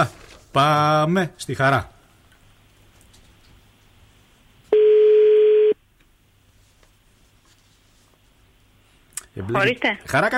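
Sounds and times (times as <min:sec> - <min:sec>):
speech: 0:00.0 - 0:01.9, 0:09.4 - 0:10.3
telephone line tone on a radio phone-in call: 0:04.7 - 0:05.8.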